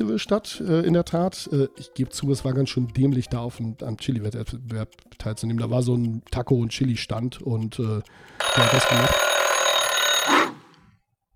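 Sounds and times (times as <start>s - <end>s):
speech: 0.1s - 9.4s
timer alarm ringing with a bright metallic bell tone: 8.1s - 10.8s.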